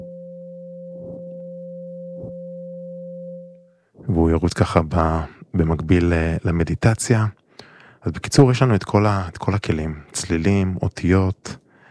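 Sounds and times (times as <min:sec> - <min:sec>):
528 Hz Solfeggio frequency tone: 0:00.0 - 0:05.3
dull thumps: 0:00.9 - 0:01.4, 0:02.1 - 0:02.6
speech: 0:04.1 - 0:07.4, 0:08.0 - 0:11.6.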